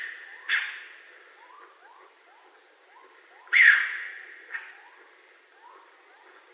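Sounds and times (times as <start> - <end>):
raccoon giving rough raspy screeches: 3.4 - 4.8.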